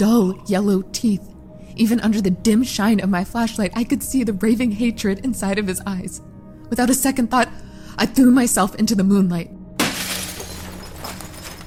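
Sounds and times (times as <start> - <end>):
speech: 0.0 - 9.6
glass shattering: 9.8 - 11.6.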